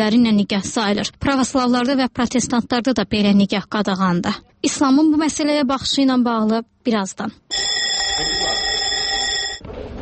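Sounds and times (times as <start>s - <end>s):
speech: 0.0s - 8.6s
electric school bell ringing at a school in central Baku: 7.5s - 9.6s.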